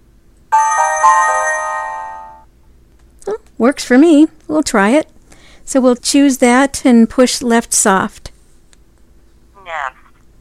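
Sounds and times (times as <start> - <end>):
mobile phone alert tone, bright bell-like electronic chime: 0.6 - 2.5
speech: 3.6 - 5.1, 5.7 - 8.3.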